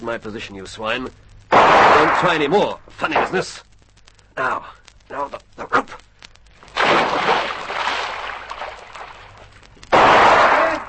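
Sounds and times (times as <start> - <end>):
speech: 0.0 - 3.7, 4.4 - 6.0
gunshots fired near a boat: 1.5 - 3.4, 6.8 - 9.2, 9.9 - 10.8.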